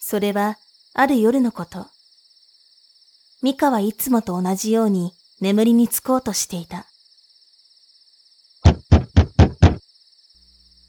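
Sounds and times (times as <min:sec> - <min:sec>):
speech: 0:00.1 - 0:02.0, 0:03.4 - 0:06.9
hard knocking on a window: 0:08.6 - 0:09.8.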